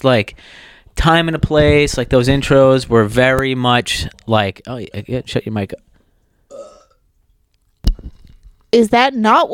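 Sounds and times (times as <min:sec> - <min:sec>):
speech: 0:00.0 - 0:05.9, 0:08.7 - 0:09.5
loud burp: 0:06.5 - 0:07.0.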